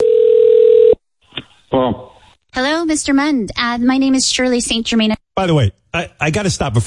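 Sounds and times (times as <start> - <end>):
telephone ring tone: 0.0 - 1.0
speech: 2.6 - 6.8.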